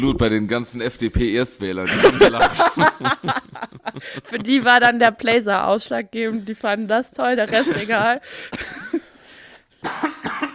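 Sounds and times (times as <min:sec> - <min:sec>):
speech: 0:00.0 - 0:08.8
laughter: 0:01.8 - 0:04.8, 0:07.5 - 0:08.2
person coughing: 0:07.5 - 0:09.2, 0:09.8 - 0:10.5.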